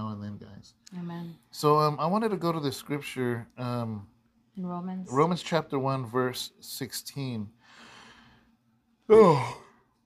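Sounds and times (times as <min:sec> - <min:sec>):
speech: 0:00.6 - 0:07.8, 0:09.1 - 0:09.6
man yawning: 0:09.1 - 0:09.8.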